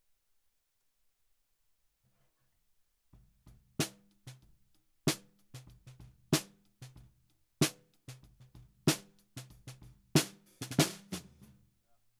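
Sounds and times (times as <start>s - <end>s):
snare drum from the bottom: 5.1s - 11.5s.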